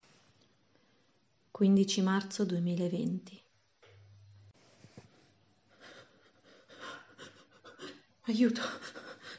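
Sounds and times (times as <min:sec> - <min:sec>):
faint low hum: 0:00.0 - 0:09.3
speech: 0:01.6 - 0:03.4, 0:08.3 - 0:09.1
heavy ragged panting: 0:05.7 - 0:09.3.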